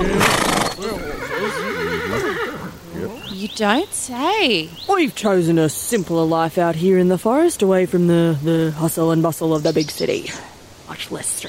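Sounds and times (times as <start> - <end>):
horse neighing: 0.0 - 3.2
speech: 3.6 - 11.4.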